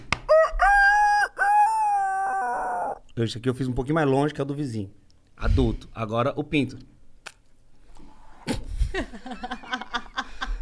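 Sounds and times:
person imitating a rooster's crow: 0.3 - 3.0
speech: 3.2 - 6.9.

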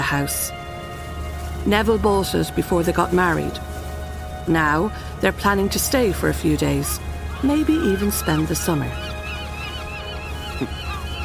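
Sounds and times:
speech: 0.1 - 0.6, 1.6 - 3.7, 4.4 - 9.1, 10.6 - 10.8
seagulls shrieking and calling: 4.6 - 11.2.

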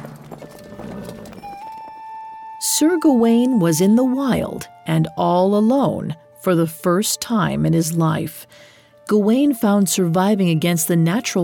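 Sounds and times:
horse hooves clip-clopping as the horse is ridden into the countryside: 0.0 - 2.4
speech: 2.6 - 11.4.

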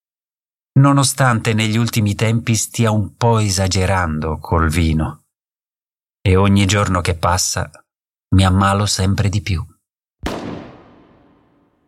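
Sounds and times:
speech: 0.8 - 5.2, 6.2 - 9.7
gunshot: 10.2 - 11.8.

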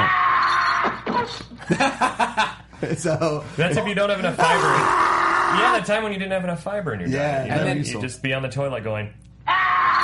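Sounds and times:
man screaming as he is chopped: 0.0 - 0.5, 4.4 - 5.8, 9.5 - 10.0
speech: 1.7 - 9.2.

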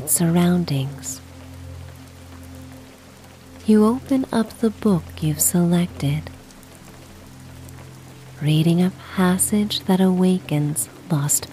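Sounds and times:
steady falling rain: 0.0 - 11.5
speech: 0.1 - 1.2, 3.7 - 6.3, 8.4 - 11.5.

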